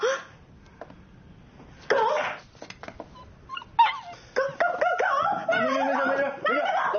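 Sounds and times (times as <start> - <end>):
small dog whining cries: 3.1 - 5.4
laughter: 4.3 - 6.9.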